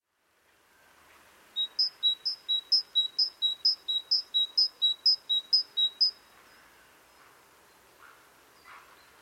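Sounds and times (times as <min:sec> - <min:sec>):
faint background hiss: 0:00.0 - 0:09.2
great tit Parus major singing: 0:01.6 - 0:06.2.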